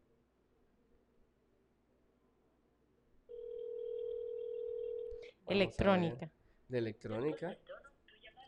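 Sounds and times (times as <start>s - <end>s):
telephone ringing tone on an outgoing call: 3.3s - 5.2s
speech: 5.5s - 7.7s.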